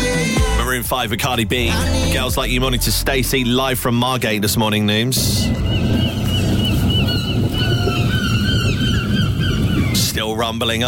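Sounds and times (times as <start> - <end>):
speech: 0.8 - 5.8, 10.2 - 10.8
steady rumbling windy noise: 0.8 - 10.8
seagulls squawking: 5.2 - 10.6.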